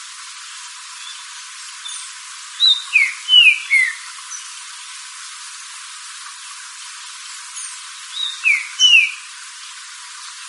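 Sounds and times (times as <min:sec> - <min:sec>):
quiet hiss: 0:00.0 - 0:10.4
green-winged saltator whistling song: 0:01.8 - 0:04.5, 0:07.6 - 0:09.3.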